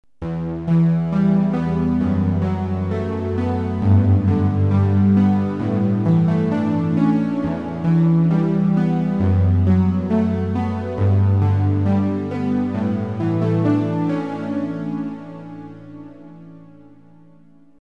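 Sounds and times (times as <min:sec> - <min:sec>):
mellow synth pad: 0:00.2 - 0:17.7.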